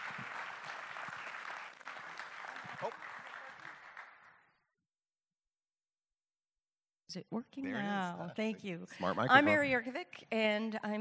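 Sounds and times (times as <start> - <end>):
audience applause: 0.0 - 4.5
speech: 7.1 - 10.9.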